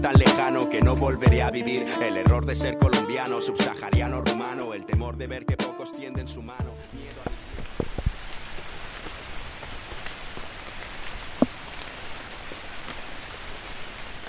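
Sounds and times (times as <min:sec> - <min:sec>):
speech: 0:00.0 - 0:07.4
steady rain pouring down: 0:06.5 - 0:14.2.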